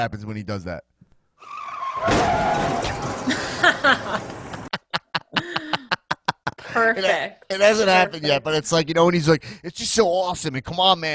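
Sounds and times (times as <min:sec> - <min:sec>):
speech: 0:00.0 - 0:04.3, 0:06.8 - 0:11.1
car crash: 0:01.4 - 0:04.7
car tires screeching in a skid: 0:01.4 - 0:04.7
laughter: 0:03.2 - 0:07.0.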